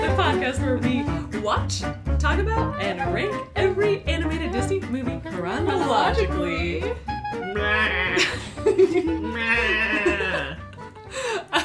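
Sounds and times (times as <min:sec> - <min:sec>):
speech: 0:00.3 - 0:11.6
person imitating a llama: 0:07.5 - 0:08.4, 0:09.2 - 0:10.6
breathy laugh-like burst: 0:07.6 - 0:11.5.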